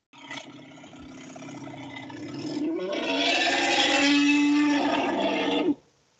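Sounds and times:
elephant trumpeting: 0:02.3 - 0:05.8.

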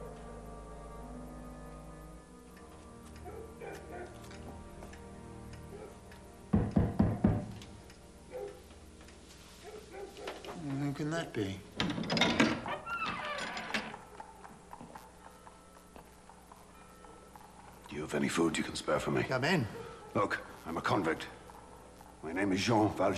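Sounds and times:
soft music: 0:00.0 - 0:11.8, 0:13.9 - 0:23.1
loud hollow knocking on a wooden door: 0:06.5 - 0:07.6
speech: 0:11.0 - 0:12.5, 0:18.1 - 0:21.4, 0:22.2 - 0:23.1.

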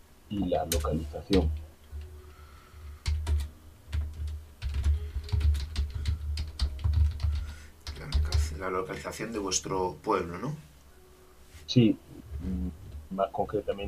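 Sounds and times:
low steady hum: 0:00.0 - 0:13.8
speech: 0:00.3 - 0:01.6, 0:08.6 - 0:10.7, 0:11.7 - 0:13.8
typing on a computer keyboard: 0:03.0 - 0:08.6.

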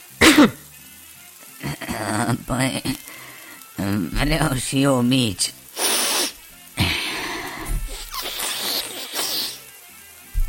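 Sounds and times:
person sneezing loudly: 0:00.2 - 0:00.6, 0:05.8 - 0:09.6
speech: 0:00.4 - 0:00.6, 0:02.1 - 0:03.2, 0:03.8 - 0:05.6
person snorting: 0:05.8 - 0:09.6.

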